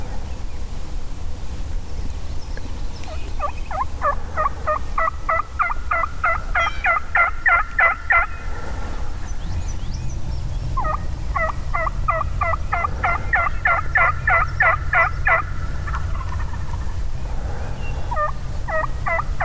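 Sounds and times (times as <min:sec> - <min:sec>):
steady low road traffic rumble: 0:00.0 - 0:19.4
wild turkey gobbling: 0:03.0 - 0:08.8, 0:10.7 - 0:17.0, 0:17.8 - 0:19.4.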